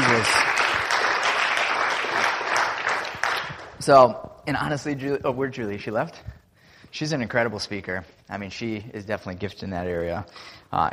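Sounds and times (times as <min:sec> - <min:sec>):
audience applauding: 0:00.0 - 0:03.9
speech: 0:03.9 - 0:10.9.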